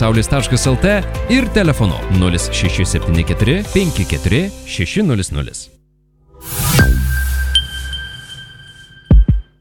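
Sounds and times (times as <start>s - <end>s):
speech: 0.0s - 5.8s
road traffic radar activation sound effect: 6.4s - 9.5s.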